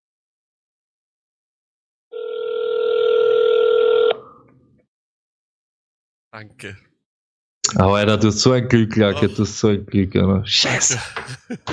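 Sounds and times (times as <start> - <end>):
ringback tone from an outgoing phone call to Florida: 2.1 - 4.3
speech: 6.3 - 6.9, 7.7 - 11.7
laughter: 10.6 - 11.7.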